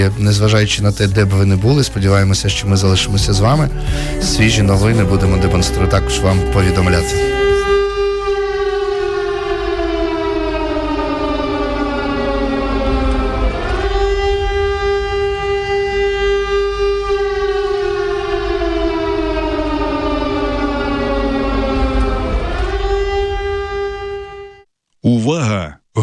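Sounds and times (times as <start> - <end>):
speech: 0.0 - 7.5
air raid alert siren wailing: 1.5 - 24.7.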